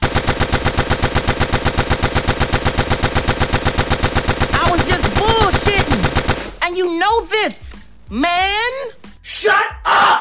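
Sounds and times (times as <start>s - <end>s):
rapid gunfire sound effect: 0.0s - 6.6s
speech: 7.4s - 10.2s.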